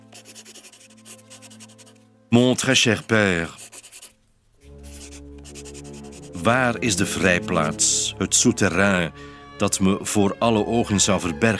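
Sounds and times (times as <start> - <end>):
pen scratching on paper writing a letter: 0.0 - 2.0, 2.9 - 7.9
speech: 2.3 - 3.6, 6.4 - 11.5.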